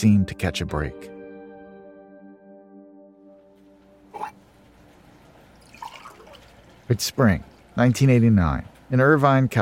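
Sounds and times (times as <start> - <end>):
speech: 0.0 - 1.2, 6.9 - 9.6
coffee pouring into a cup in an office in Irvine California: 5.6 - 6.8
splashy coffee drips: 5.6 - 6.9.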